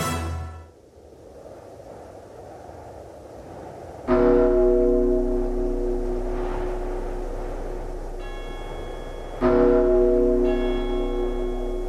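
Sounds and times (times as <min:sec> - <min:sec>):
heavy iron bell tolling: 0:04.2 - 0:11.8
low rumble: 0:04.2 - 0:11.8.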